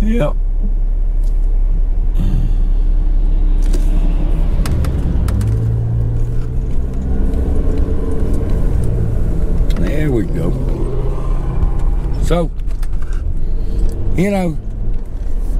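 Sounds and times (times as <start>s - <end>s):
idling and slowly moving vehicles in a traffic jam: 0.0s - 15.5s
speech: 0.1s - 0.5s, 10.0s - 10.7s, 12.3s - 12.6s, 14.2s - 14.7s
brakes clanking and hissing: 3.2s - 15.5s.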